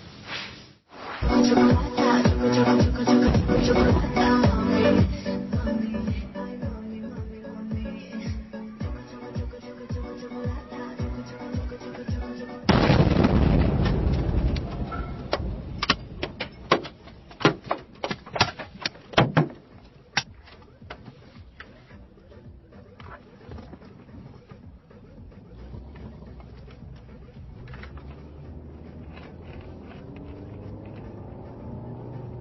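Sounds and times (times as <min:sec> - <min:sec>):
music playing inside a car: 0:01.2 - 0:12.7, 0:18.2 - 0:32.3
loud deep rocket explosion blast: 0:12.7 - 0:15.8.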